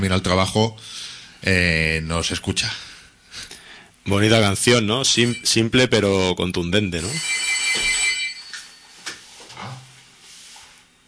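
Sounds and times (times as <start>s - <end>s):
speech: 0.0s - 7.8s
telephone ringing with an incoming call to a radio call-in show: 4.8s - 5.8s, 7.0s - 9.0s.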